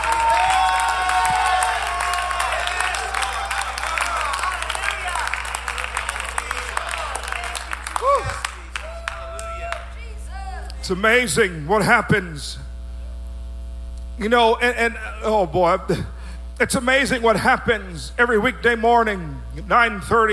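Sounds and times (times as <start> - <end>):
audience clapping and cheering in praise of the Lord: 0.0 - 10.8
speech: 10.9 - 12.7, 14.2 - 20.3.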